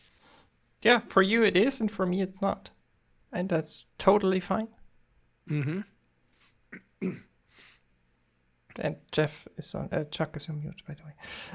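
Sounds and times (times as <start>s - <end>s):
soft breaths: 0.0s - 0.6s, 7.4s - 8.6s
speech: 0.8s - 4.8s, 5.5s - 5.9s, 6.7s - 7.3s, 8.8s - 11.5s
person clearing throat: 5.5s - 5.9s, 6.7s - 7.3s
person coughing: 5.5s - 5.9s, 6.7s - 7.3s.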